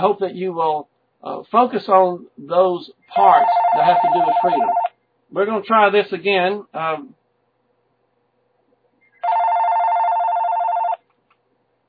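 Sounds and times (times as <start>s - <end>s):
speech: 0.0s - 7.2s
telephone ringing on a radio call-in line: 3.2s - 4.9s, 9.2s - 11.0s.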